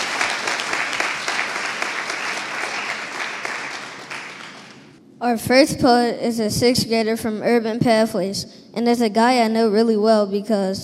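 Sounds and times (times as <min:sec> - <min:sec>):
crowd clapping: 0:00.0 - 0:05.0
speech: 0:05.2 - 0:10.8.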